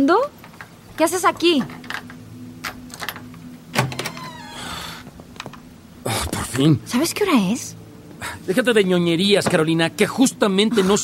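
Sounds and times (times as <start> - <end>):
steady low mechanical hum: 0.0 - 11.0
speech: 1.0 - 1.9, 6.6 - 7.8, 8.5 - 11.0
door being unlatched and opened with clicks, a clunk and creaking: 1.6 - 4.6.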